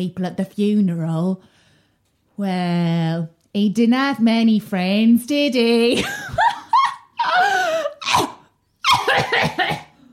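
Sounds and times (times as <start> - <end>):
speech: 0.0 - 1.6, 2.4 - 6.3
woman coughing in harsh fits: 7.9 - 10.1.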